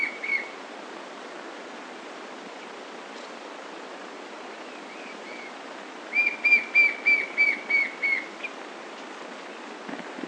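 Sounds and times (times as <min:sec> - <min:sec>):
constant hiss: 0:00.0 - 0:10.2
white-shouldered fire-eye whistling: 0:04.9 - 0:05.5, 0:06.1 - 0:08.5.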